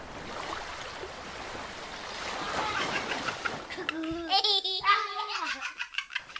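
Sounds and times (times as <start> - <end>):
sea waves: 0.0 - 6.3
child giggling: 2.5 - 6.3.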